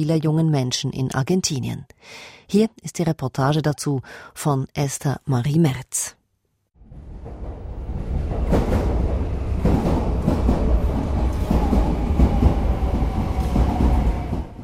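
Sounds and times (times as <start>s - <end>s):
speech: 0.0s - 6.2s
subway train rumbling through a station in Buenos Aires at rush hour: 6.8s - 14.6s.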